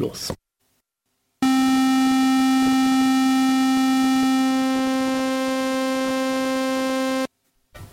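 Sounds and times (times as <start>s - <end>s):
speech: 0.0s - 0.4s
square-wave synthesizer tone with sawtooth blended in: 1.4s - 7.3s.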